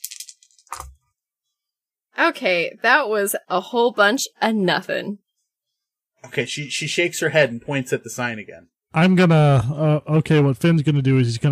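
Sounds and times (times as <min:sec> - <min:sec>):
dice rattling in a cupped hand: 0:00.0 - 0:00.9
speech: 0:02.2 - 0:05.2, 0:06.2 - 0:11.4.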